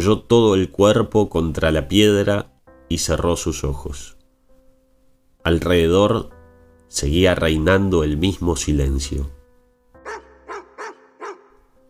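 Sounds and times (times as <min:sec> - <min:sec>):
speech: 0:00.0 - 0:04.2, 0:05.4 - 0:09.4
dog barking: 0:10.0 - 0:11.7.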